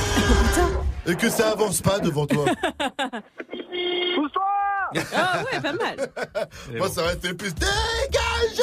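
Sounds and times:
speech: 0:00.2 - 0:08.6
laughter: 0:02.0 - 0:03.4, 0:04.9 - 0:06.7
car horn honking: 0:03.6 - 0:04.4.

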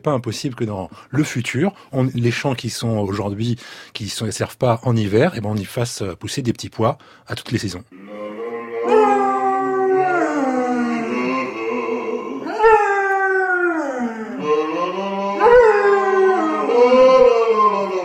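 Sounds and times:
speech: 0:00.0 - 0:08.4
dog howling: 0:08.0 - 0:18.0.

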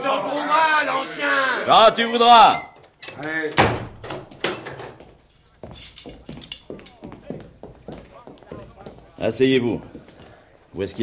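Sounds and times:
speech: 0:01.1 - 0:03.8, 0:09.2 - 0:09.9, 0:10.8 - 0:11.0
door pushed shut by a gendarme with a loud solid thud: 0:02.5 - 0:05.0
quieter shuffling: 0:04.2 - 0:11.0.

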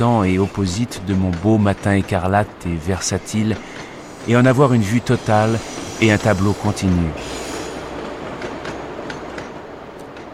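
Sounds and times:
speech: 0:00.0 - 0:07.4
train running on rails: 0:00.0 - 0:10.3
train wheel squeals: 0:03.0 - 0:08.0.

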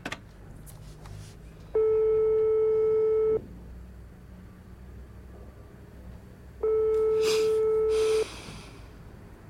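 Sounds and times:
telephone call tone beeps: 0:01.7 - 0:03.4, 0:06.6 - 0:08.2.

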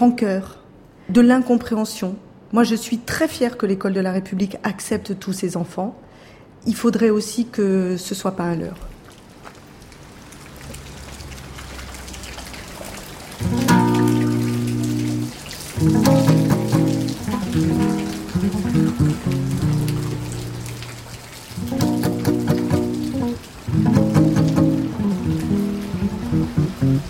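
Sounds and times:
speech: 0:00.0 - 0:08.9
rain from a small thunderstorm on a hard surface in Mamoudzou, Mayotte: 0:08.1 - 0:27.0.

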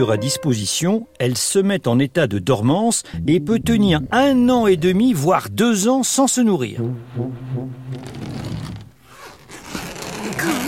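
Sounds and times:
speech: 0:00.0 - 0:08.2
suitcase zipper being pulled open: 0:07.9 - 0:10.6.

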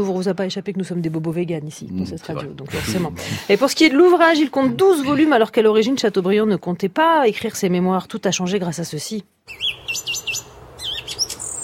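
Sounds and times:
speech: 0:00.0 - 0:10.1
song thrush singing: 0:09.5 - 0:11.6.

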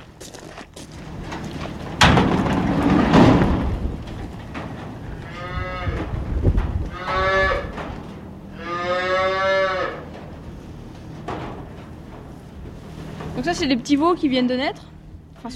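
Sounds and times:
rustling and clatter in a barn: 0:00.0 - 0:07.0, 0:10.0 - 0:15.5
black-and-white Prim'Holstein dairy cows mooing in a barn while eating maize silage: 0:04.9 - 0:10.4
speech: 0:13.5 - 0:15.5.

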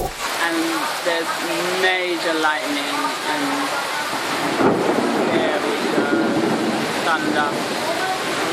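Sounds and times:
heavy rain pounding down in a storm in Nepal's Bara district: 0:00.0 - 0:08.5
strong gusting wind in a storm in Nepal's Bara district: 0:04.1 - 0:08.5.

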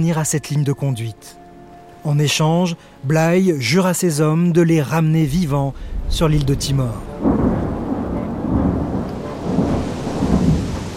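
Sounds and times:
speech: 0:00.0 - 0:01.4, 0:02.0 - 0:07.4
deep rolls of thunder rumbling: 0:05.2 - 0:10.9
steady heavy rain in a thunderstorm: 0:05.2 - 0:10.9.

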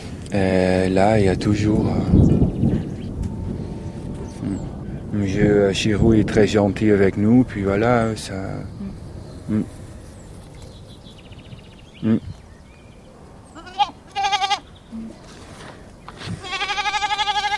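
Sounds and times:
faint noise: 0:00.0 - 0:17.5
speech: 0:00.3 - 0:02.3, 0:05.2 - 0:08.8, 0:09.5 - 0:09.8, 0:12.0 - 0:12.2
goats bleating: 0:13.6 - 0:14.7, 0:16.3 - 0:17.5.

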